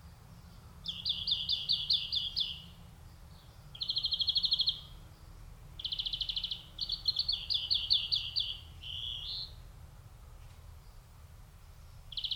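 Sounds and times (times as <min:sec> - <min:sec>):
low steady rumble: 0:00.0 - 0:12.3
European greenfinch Chloris chloris singing high ringing trills: 0:00.3 - 0:09.6, 0:11.8 - 0:12.3.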